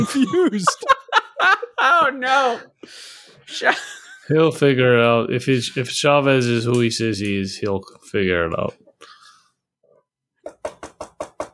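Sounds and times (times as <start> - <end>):
laughter: 0.0 - 2.1
speech: 0.0 - 8.8
light quick knocking on a door: 10.5 - 11.5.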